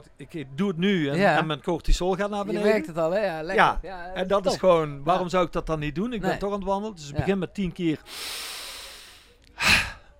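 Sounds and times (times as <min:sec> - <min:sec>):
speech: 0:00.0 - 0:08.6
slow deliberate exhale in a breathing exercise: 0:08.1 - 0:10.1.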